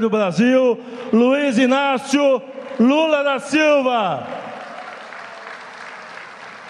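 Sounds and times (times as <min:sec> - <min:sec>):
speech: 0:00.0 - 0:04.4
crowd applause at a political rally in Brazil: 0:02.5 - 0:06.6.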